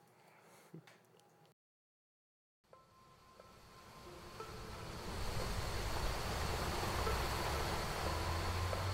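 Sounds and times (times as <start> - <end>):
ocean waves washing onto the shore: 4.2 - 8.9.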